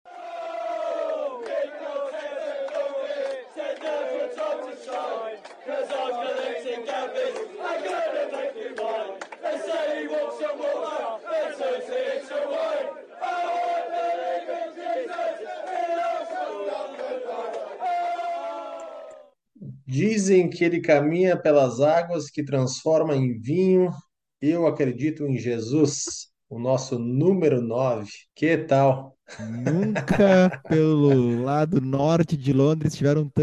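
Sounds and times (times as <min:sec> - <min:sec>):
large stadium crowd of football supporters singing a chant: 0:00.1 - 0:19.2
speech: 0:19.9 - 0:33.4
laughter: 0:29.3 - 0:31.7.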